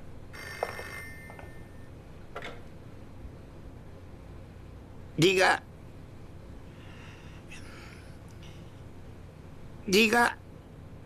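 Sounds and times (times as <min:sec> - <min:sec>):
old-fashioned telephone bell ringing: 0:00.3 - 0:02.0
speech: 0:05.2 - 0:05.7, 0:09.9 - 0:10.4.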